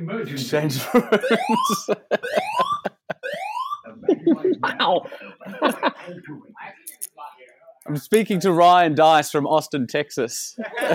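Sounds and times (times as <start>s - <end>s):
speech: 0.0s - 2.9s, 4.8s - 6.4s, 7.9s - 10.9s
laughter: 0.7s - 6.3s, 10.6s - 10.9s
fire alarm with rising electronic sweeps and short sharp beeps: 1.2s - 3.9s.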